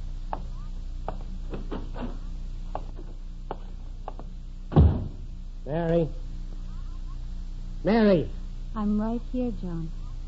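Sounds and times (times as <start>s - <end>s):
heavy footsteps on a porch: 0.2s - 5.3s
speech: 7.8s - 10.0s.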